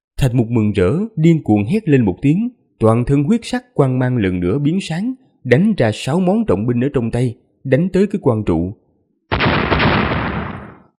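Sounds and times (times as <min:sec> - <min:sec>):
speech: 0:00.2 - 0:08.8
loud explosion sound effect: 0:09.3 - 0:10.9.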